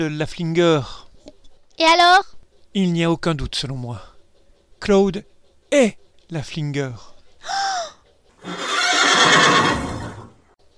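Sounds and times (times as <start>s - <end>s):
speech: 0.0s - 1.0s, 1.8s - 4.1s, 4.8s - 7.6s
horse neighing and whinnying: 8.4s - 10.4s.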